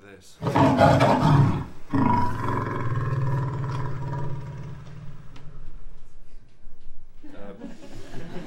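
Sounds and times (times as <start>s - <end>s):
speech: 0.2s - 2.3s
lioness roaring and snarling, rejecting male lion: 0.4s - 5.4s
laughter: 7.2s - 8.4s.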